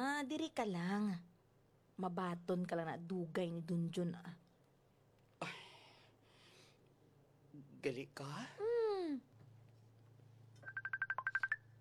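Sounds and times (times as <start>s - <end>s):
speech: 0.0s - 1.3s, 2.0s - 4.4s, 7.6s - 9.3s
cellphone ringing with incoming call: 10.6s - 11.7s.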